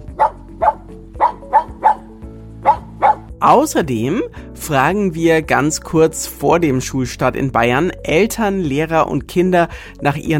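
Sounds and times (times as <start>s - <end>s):
dog barking: 0.0s - 3.3s
speech: 3.4s - 10.3s.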